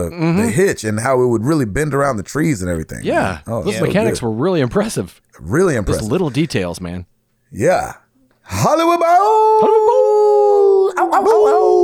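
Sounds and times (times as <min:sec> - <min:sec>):
speech: 0:00.0 - 0:10.3, 0:11.0 - 0:11.8
person imitating a wolf howl with yips: 0:09.1 - 0:11.8.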